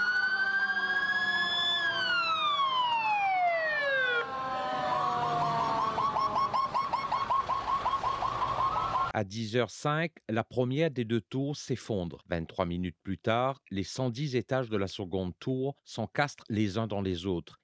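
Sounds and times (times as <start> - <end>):
emergency vehicle sirens wailing and yelping: 0.0 - 9.2
speech: 9.2 - 17.6.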